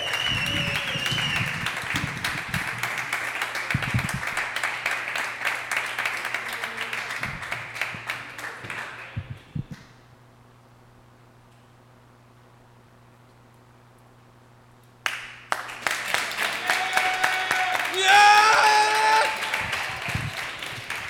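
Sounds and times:
cheering: 0.0 - 1.8, 15.8 - 21.0
large audience clapping for a headliner: 0.0 - 9.8, 15.0 - 21.0.

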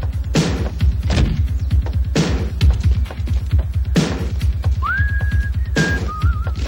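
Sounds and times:
loud thumping music with a heavy repeating beat: 0.0 - 6.6
man whistling while walking up to rob a store in a film scene: 4.8 - 6.6.

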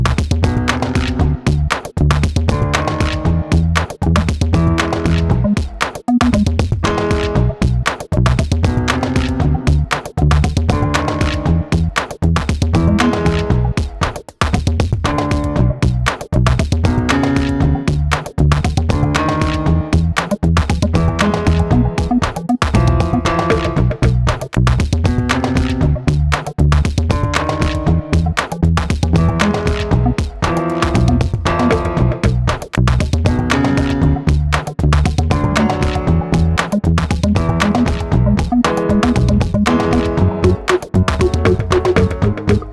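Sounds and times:
foreboding discordant beat: 0.2 - 42.7.

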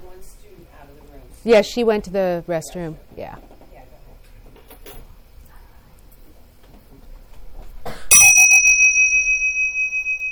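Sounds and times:
speech: 1.4 - 3.5
bright bell struck for a focus exercise ringing out: 8.1 - 10.2.

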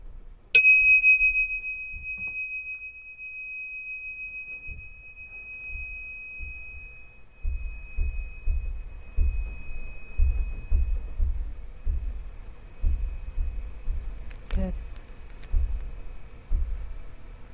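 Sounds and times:
meditation bell ringing: 0.6 - 11.1
soft low rumbles: 4.0 - 17.5.

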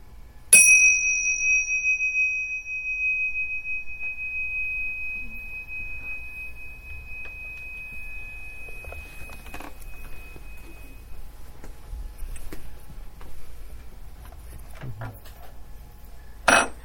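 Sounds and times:
meditation bell struck to end a meditation: 0.5 - 11.3.

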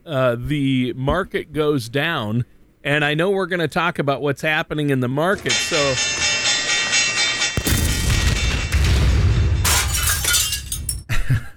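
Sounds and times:
speech: 0.0 - 6.3
crashing and shattering debris: 6.9 - 11.1
explosion blast sound effect: 7.6 - 10.0.

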